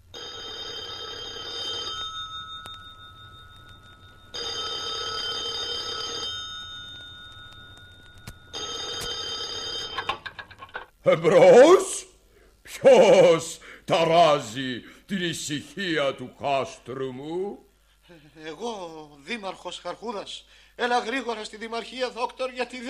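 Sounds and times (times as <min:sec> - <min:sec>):
telephone ringing with a trilling bell: 0:00.1 - 0:10.9
speech: 0:11.1 - 0:11.9, 0:12.9 - 0:22.8.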